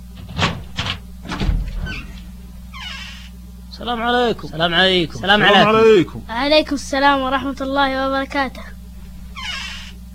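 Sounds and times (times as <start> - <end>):
door being opened with clattering scraping knocks: 0.0 - 3.2, 9.3 - 9.9
low rumbling hum: 0.0 - 10.1
speech: 3.8 - 8.8.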